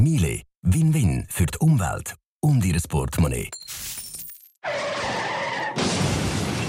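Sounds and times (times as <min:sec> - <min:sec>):
speech: 0:00.0 - 0:04.0
breaking glass: 0:03.6 - 0:04.6, 0:05.8 - 0:06.6
car skidding with tire squeal: 0:04.6 - 0:05.8
car crash: 0:04.6 - 0:06.6.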